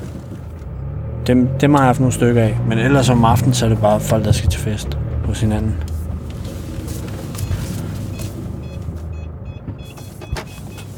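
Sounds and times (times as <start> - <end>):
car engine idling while parking: 0.0 - 10.9
speech: 1.3 - 5.9
electronic beeps from a car parking sensor: 7.4 - 10.9.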